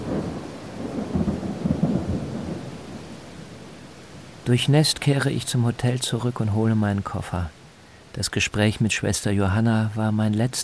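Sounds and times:
low thunder rumbling in a summer thunderstorm: 0:00.0 - 0:03.7
heavy rain pouring in a mountain village in Transylvania: 0:00.0 - 0:10.6
speech: 0:04.5 - 0:07.6, 0:08.2 - 0:10.6.

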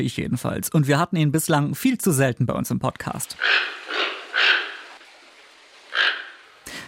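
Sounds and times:
speech: 0:00.0 - 0:03.8
toucan giving hoarse croaking calls: 0:03.2 - 0:06.8.

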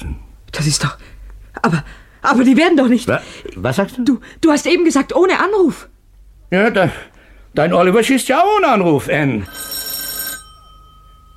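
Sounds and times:
speech: 0:00.6 - 0:05.9, 0:06.5 - 0:09.7
telephone bell ringing: 0:09.4 - 0:11.3.

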